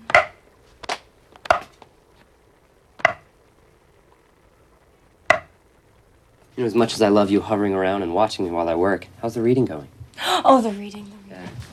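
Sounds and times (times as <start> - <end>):
knife chopping food on a cutting board: 0.1 - 0.4, 3.0 - 3.2
speech: 6.6 - 11.1.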